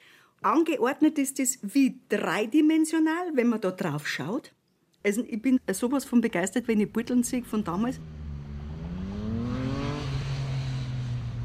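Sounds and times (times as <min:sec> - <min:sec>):
speech: 0:00.4 - 0:08.2
traffic noise: 0:06.4 - 0:11.4
car driving past on a busy road over the Inn bridge: 0:06.9 - 0:11.4.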